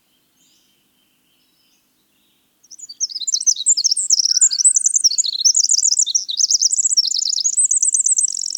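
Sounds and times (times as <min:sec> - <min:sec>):
winter wren song: 0:02.6 - 0:08.5.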